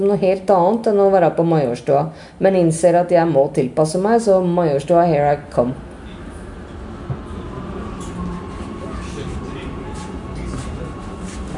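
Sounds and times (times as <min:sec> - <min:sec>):
speech: 0:00.0 - 0:05.9
metro train braking into a station: 0:05.8 - 0:11.5
faint voices in the carriage: 0:07.1 - 0:11.5.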